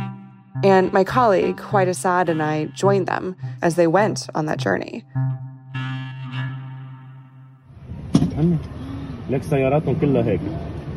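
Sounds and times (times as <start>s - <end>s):
horn-like tones: 0.0s - 7.7s
speech: 0.6s - 5.4s, 8.4s - 10.7s
rumbling traffic of a car convoy: 7.7s - 10.9s
vehicle engines droning: 7.7s - 10.9s.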